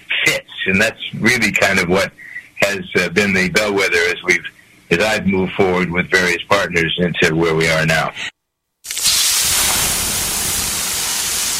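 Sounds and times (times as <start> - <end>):
speech: 0.7 - 8.3
water poured on hot sauna rocks, hissing steam: 8.9 - 11.5.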